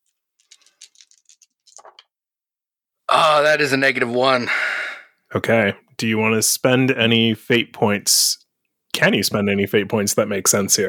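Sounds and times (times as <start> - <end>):
handful of dice rattling across a hard surface: 0.0 - 2.1
speech: 3.2 - 4.6, 5.3 - 8.4, 9.0 - 10.8.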